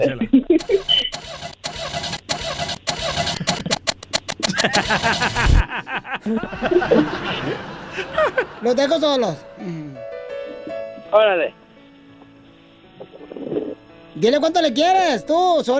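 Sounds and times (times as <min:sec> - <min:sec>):
speech: 0:00.0 - 0:00.3, 0:04.6 - 0:09.8, 0:11.1 - 0:11.6, 0:14.2 - 0:15.7
laughter: 0:00.0 - 0:01.0, 0:04.5 - 0:09.0
person vocally imitating a broken-down car engine cranking: 0:00.6 - 0:05.6.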